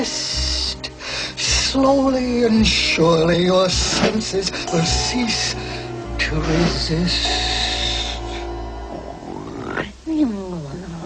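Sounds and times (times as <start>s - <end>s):
speech: 0.0s - 0.3s, 1.7s - 7.4s
loud snoring with snorting gurgling grunt: 8.0s - 10.0s.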